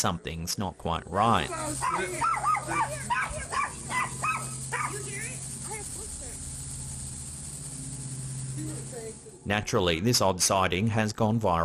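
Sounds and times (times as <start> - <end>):
speech: 0.0 - 3.1, 9.4 - 11.6
low constant hum: 0.0 - 11.6
dogs barking with high yelping barks: 1.8 - 5.1.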